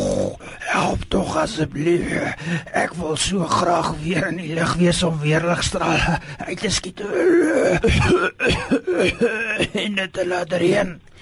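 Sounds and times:
speech: 0.8 - 11.2
person clearing throat: 7.2 - 9.9
person coughing: 7.5 - 9.9.

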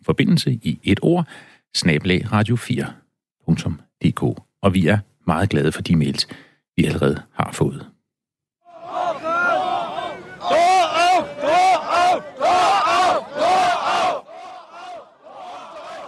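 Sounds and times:
speech: 0.0 - 7.9
large crowd in Berlin shouting and chanting at the fall of the Berlin Wall: 8.7 - 16.0.

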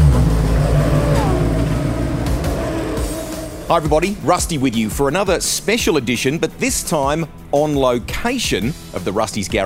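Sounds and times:
rally car engine revving at the service park in Canberra, Australia: 0.0 - 5.2
speech: 3.7 - 9.6.

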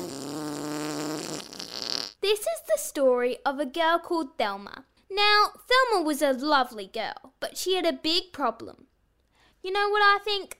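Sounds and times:
long buzzy fart sound effect: 0.0 - 2.2
speech: 2.3 - 8.9, 9.6 - 10.5.

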